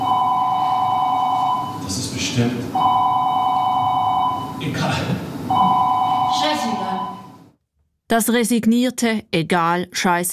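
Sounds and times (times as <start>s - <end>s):
telephone ringing in long electronic trilling bursts: 0.0s - 1.8s, 2.8s - 4.6s, 5.5s - 7.5s
speech: 2.4s - 2.7s, 8.1s - 10.3s.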